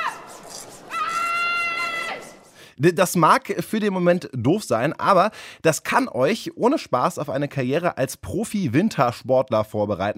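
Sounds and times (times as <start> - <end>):
person imitating an angry parent yelling at a child: 0.9 - 2.4
speech: 2.8 - 10.1.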